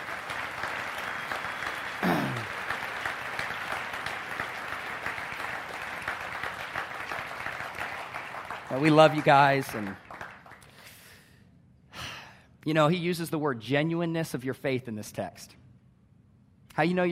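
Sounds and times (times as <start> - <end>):
audience applauding: 0.0 - 10.8
speech: 8.8 - 10.0, 12.7 - 15.6, 16.8 - 17.1.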